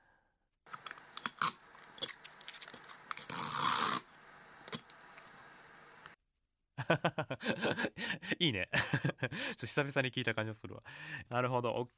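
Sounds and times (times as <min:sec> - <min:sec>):
tape cut on a tape dispenser: 0:00.7 - 0:05.4
laughter: 0:06.8 - 0:09.4
speech: 0:06.9 - 0:07.7, 0:08.4 - 0:11.9.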